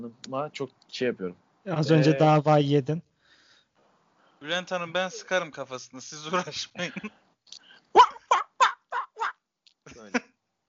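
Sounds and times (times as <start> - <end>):
speech: 0.1 - 3.1, 4.4 - 7.2
person imitating a seal with nasal barking cries: 8.0 - 9.4
shorter rasping call: 8.0 - 9.4.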